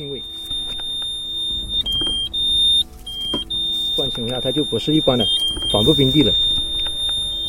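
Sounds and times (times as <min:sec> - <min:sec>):
metal detector whistling in landmine clearance: 0:00.0 - 0:07.4
person talking: 0:04.0 - 0:06.4.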